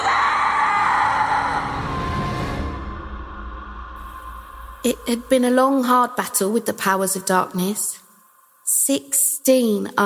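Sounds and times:
loud piercing scream: 0:00.0 - 0:05.4
speech: 0:04.8 - 0:08.0, 0:08.9 - 0:10.0.

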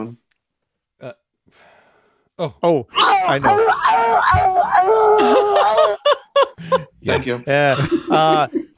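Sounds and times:
speech: 0:01.0 - 0:01.7, 0:02.4 - 0:08.7
person imitating an anguished scream of pain: 0:03.0 - 0:06.1
laughter: 0:04.4 - 0:08.7.

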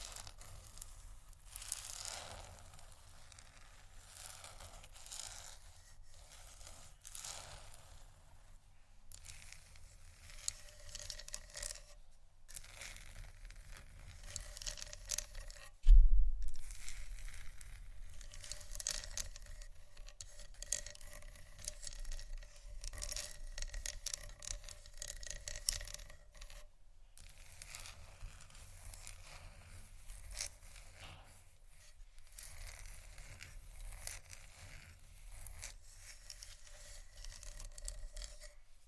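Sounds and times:
scratching and scraping: 0:00.0 - 0:38.8
sharp thump: 0:15.8 - 0:16.5
faint low hum: 0:15.8 - 0:18.1.

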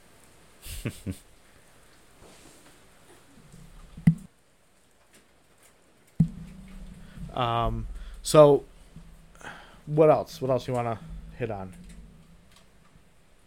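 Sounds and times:
speech: 0:00.8 - 0:01.3, 0:07.4 - 0:08.7, 0:09.9 - 0:11.8
faint scattered pattering: 0:06.2 - 0:13.4
low hum: 0:06.2 - 0:13.4.

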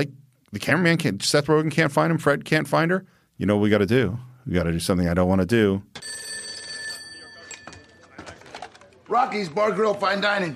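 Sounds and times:
speech: 0:00.0 - 0:06.2, 0:09.1 - 0:10.5
telephone ringing with a high electronic tone: 0:06.0 - 0:08.8
noise: 0:07.1 - 0:10.3.

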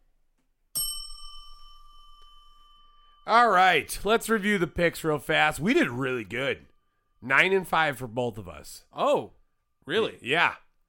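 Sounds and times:
bell ding: 0:00.8 - 0:07.5
speech: 0:03.3 - 0:10.6.

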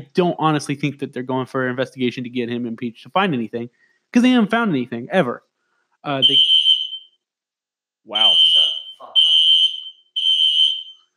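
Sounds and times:
speech: 0:00.0 - 0:06.6, 0:08.0 - 0:08.4
shrill fire alarm beeping in an apartment: 0:06.2 - 0:07.2, 0:08.2 - 0:11.1.

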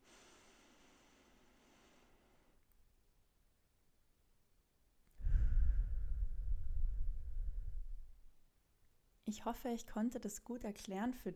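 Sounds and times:
long slow breath in a box breathing demonstration: 0:00.0 - 0:02.6, 0:05.2 - 0:08.3
speech: 0:09.3 - 0:11.3.

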